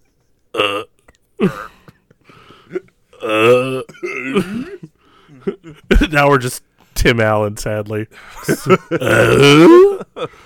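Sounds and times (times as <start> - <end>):
loud croaking burps: 0.5 - 1.6, 3.2 - 4.7, 9.0 - 9.8
speech: 0.6 - 1.7, 6.1 - 10.4.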